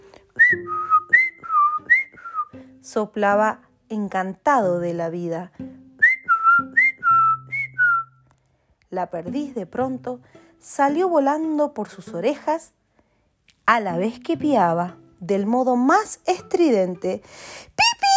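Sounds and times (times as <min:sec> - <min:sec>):
person whistling a tune: 0:00.0 - 0:02.7, 0:05.9 - 0:08.3
speech: 0:02.9 - 0:05.6, 0:09.0 - 0:12.8, 0:13.7 - 0:18.0.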